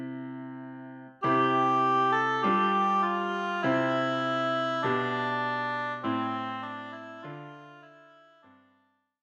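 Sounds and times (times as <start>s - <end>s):
oboe: 1.2s - 8.5s.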